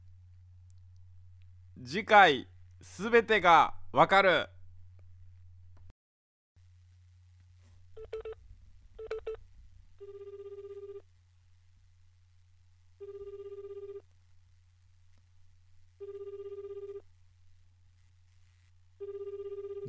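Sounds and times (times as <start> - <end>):
speech: 1.8 - 4.6
steady low phone line hum: 7.9 - 12.0, 12.9 - 14.7, 15.9 - 19.8.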